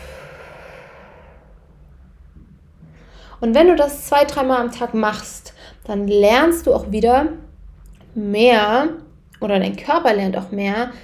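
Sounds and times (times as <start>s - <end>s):
relaxed exhale after holding a deep breath during a breathing exercise: 0.0s - 1.7s
speech: 3.4s - 7.4s, 8.2s - 11.0s.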